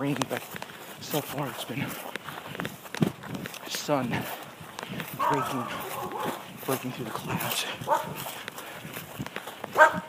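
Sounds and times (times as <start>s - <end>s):
speech: 0.0s - 2.7s, 3.9s - 6.0s, 6.7s - 9.0s
quiet outdoor noise: 0.0s - 10.0s
dogs barking on the other side of a fence: 5.2s - 6.5s, 7.2s - 8.3s, 9.7s - 10.0s.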